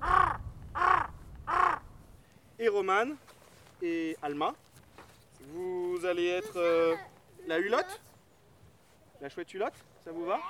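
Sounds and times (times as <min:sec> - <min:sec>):
raven calls, hoarse caws: 0:00.0 - 0:02.0
speech: 0:02.6 - 0:04.7, 0:05.4 - 0:08.0, 0:09.2 - 0:10.4.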